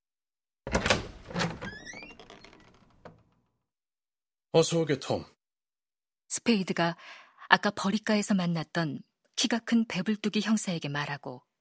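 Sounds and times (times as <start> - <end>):
door latch rattling: 0.7 - 3.4
speech: 4.5 - 5.4, 6.4 - 11.5.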